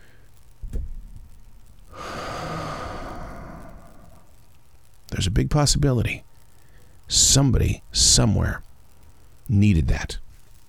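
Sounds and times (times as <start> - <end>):
slow breath drawn in during meditation: 1.9 - 4.4
speech: 5.2 - 6.3, 7.1 - 8.6, 9.5 - 10.2.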